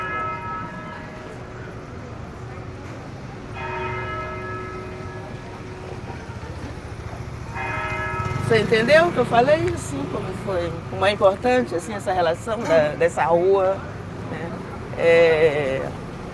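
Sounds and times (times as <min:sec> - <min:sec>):
church bell tolling: 0:00.0 - 0:09.0
speech: 0:08.5 - 0:13.9, 0:15.0 - 0:16.0.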